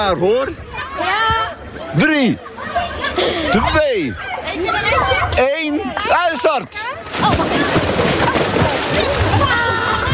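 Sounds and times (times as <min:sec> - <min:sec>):
speech: 0:00.0 - 0:01.1, 0:01.8 - 0:02.6, 0:03.2 - 0:09.8
faint young voices: 0:00.4 - 0:10.1
children jumping and splashing into swimming pool water: 0:06.8 - 0:10.1.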